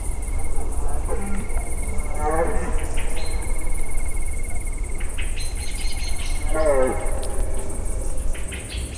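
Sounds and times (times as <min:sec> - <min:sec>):
female deer in nature: 0:00.0 - 0:08.6
birds in nature: 0:00.0 - 0:08.8.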